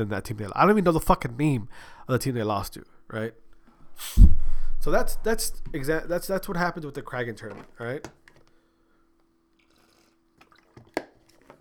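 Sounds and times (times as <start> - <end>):
speech: 0.0 - 3.4, 4.0 - 8.2
person sipping and swallowing water: 9.6 - 11.5.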